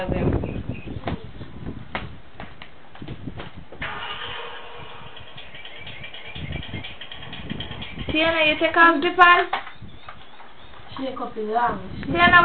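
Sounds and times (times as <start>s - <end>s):
speech: 0.0s - 0.3s, 8.2s - 9.6s, 11.0s - 12.4s
sharp knocks and clicks: 2.0s - 11.1s
car engine starting and running as the car drives off: 3.8s - 8.0s.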